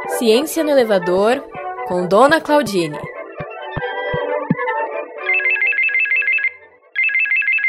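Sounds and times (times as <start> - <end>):
speech: 0.1 - 3.1
brief musical passage with sharp beats: 1.0 - 4.8
phone ringtone with bright rapidly warbling electronic trill: 5.3 - 7.6.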